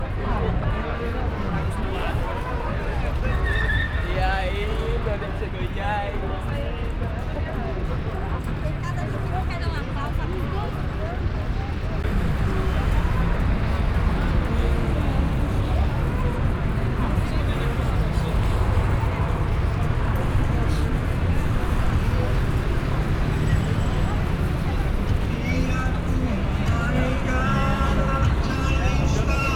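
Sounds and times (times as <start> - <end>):
street ambience in Brazil: 0.0 - 29.5.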